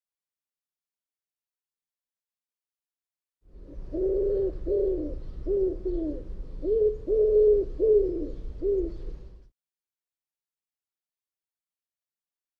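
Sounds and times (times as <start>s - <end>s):
bird giving soft low cooing notes: 3.6s - 9.3s.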